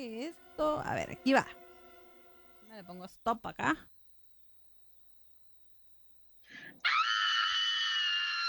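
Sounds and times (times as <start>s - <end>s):
speech: 0.0s - 1.6s, 2.7s - 3.9s
woman's high-pitched scream of fear: 6.8s - 8.4s.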